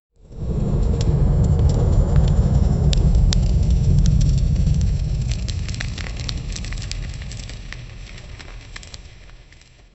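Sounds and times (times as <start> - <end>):
roaring fire in a hell ambiance: 0.2 - 9.9
rocks falling: 2.9 - 9.8.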